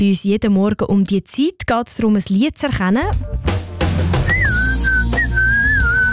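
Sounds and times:
speech: 0:00.0 - 0:04.4
person whistling a pop song melody: 0:04.2 - 0:06.1.

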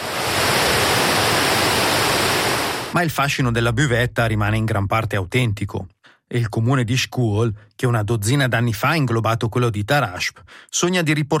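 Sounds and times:
rushing river water: 0:00.0 - 0:02.9
speech: 0:03.0 - 0:11.3.

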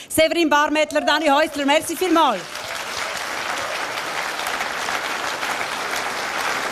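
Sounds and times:
speech: 0:00.1 - 0:02.6
sustained audience applause: 0:01.5 - 0:06.6.

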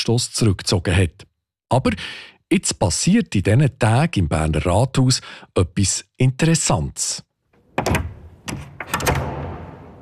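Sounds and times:
speech: 0:00.0 - 0:09.3
door clicking and thudding: 0:07.6 - 0:10.0.

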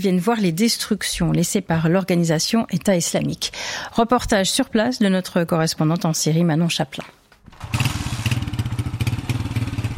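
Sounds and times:
speech: 0:00.0 - 0:07.8
motorcycle engine running: 0:07.5 - 0:09.9.

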